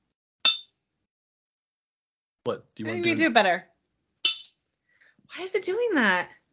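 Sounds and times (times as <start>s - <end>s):
speech: 2.4s - 3.7s, 5.3s - 6.4s
crystal wine glasses clinking in a toast: 2.9s - 3.2s.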